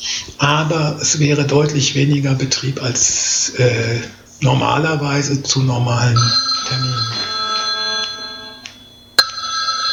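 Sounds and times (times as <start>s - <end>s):
speech: 0.4s - 7.3s
mobile phone ringing with a bright electronic tone: 6.2s - 9.9s.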